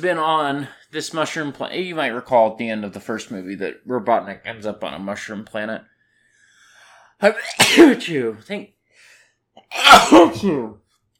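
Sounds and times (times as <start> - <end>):
speech: 0.0 - 5.9, 7.2 - 8.8, 9.6 - 10.8
quiet breath: 5.9 - 7.2, 8.8 - 9.5
person sneezing: 7.4 - 8.0, 9.6 - 10.6.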